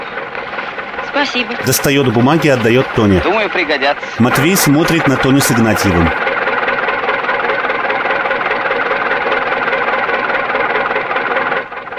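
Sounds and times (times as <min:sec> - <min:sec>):
tractor engine idling: 0:00.0 - 0:11.9
speech: 0:01.2 - 0:06.3.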